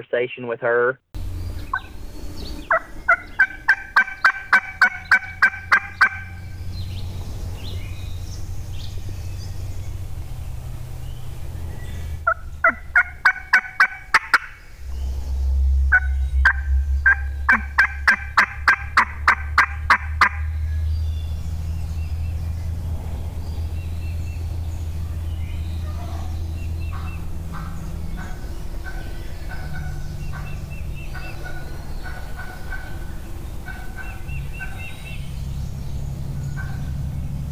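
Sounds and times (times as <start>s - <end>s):
speech: 0.0s - 1.1s
low rumbling hum: 1.2s - 37.5s
wild turkey hen yelping: 1.5s - 7.0s, 12.2s - 14.8s, 15.9s - 20.8s, 25.9s - 35.2s.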